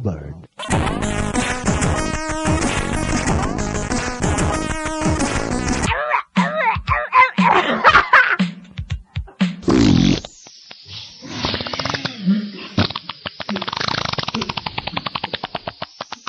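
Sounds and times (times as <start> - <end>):
fart noises: 0.6 - 6.0, 9.6 - 10.3, 11.2 - 16.2
laughter: 5.9 - 8.4.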